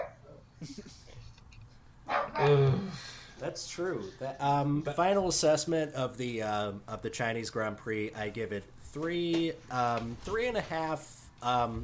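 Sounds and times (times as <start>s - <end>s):
dog barking excitedly: 0.0s - 0.3s, 2.1s - 2.5s
speech: 0.6s - 1.1s, 2.4s - 11.8s.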